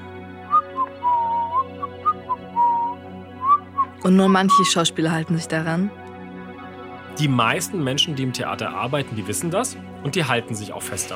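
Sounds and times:
person whistling a tune: 0:00.5 - 0:04.8
speech: 0:04.0 - 0:06.0, 0:07.2 - 0:11.1.

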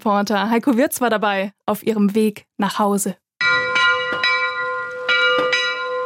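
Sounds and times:
speech: 0:00.0 - 0:03.2
bronze storm bell of collegiate church struck in a rig on cobblestones in Neustadt an der Weinstraße: 0:03.4 - 0:06.0.

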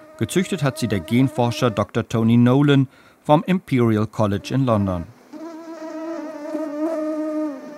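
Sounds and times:
thousands of mosquitoes buzzing in cages: 0:00.0 - 0:02.0, 0:04.3 - 0:07.7
speech: 0:00.2 - 0:05.2.

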